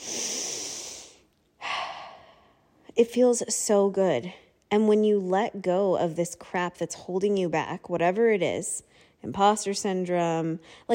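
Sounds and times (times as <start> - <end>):
person taking a giant deep breath: 0.0 - 2.8
speech: 3.0 - 10.9.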